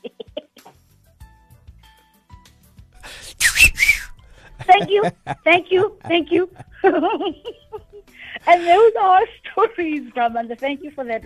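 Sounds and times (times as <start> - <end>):
person whistling: 3.0 - 4.5
loud breathy burst of air: 3.0 - 4.6
laughter: 4.3 - 8.9
speech: 4.7 - 7.6, 8.5 - 11.2.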